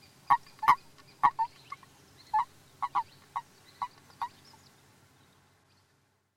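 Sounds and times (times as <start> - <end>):
common toad giving short croaking notes: 0.3 - 4.4.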